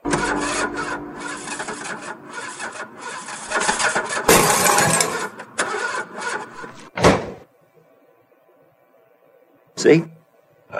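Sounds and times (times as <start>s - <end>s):
old run-down car engine cranking: 0.1s - 6.9s
speech: 9.8s - 10.1s.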